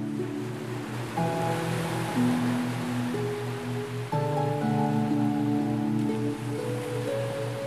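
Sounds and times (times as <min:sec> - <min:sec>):
ocean surf rushing: 0:00.0 - 0:07.6
soft sustained musical chords: 0:00.0 - 0:07.6.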